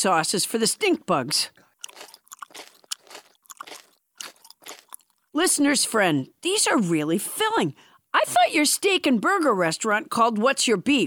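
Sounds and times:
speech: 0.0s - 2.1s, 5.4s - 11.0s
crisp crunching of someone chewing a crunchy bite of mealworms: 1.6s - 5.3s.

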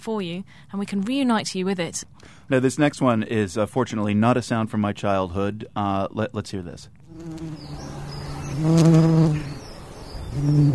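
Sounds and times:
speech: 0.0s - 8.0s, 8.6s - 9.6s, 10.3s - 10.7s
Dutch bumblebees buzzing in a back garden: 7.1s - 10.7s.

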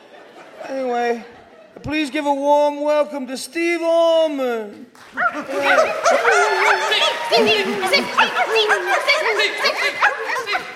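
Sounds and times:
laughter: 0.0s - 2.0s, 5.1s - 10.7s
speech: 0.7s - 10.4s
crowd of dogs barking and yipping: 5.2s - 10.7s.

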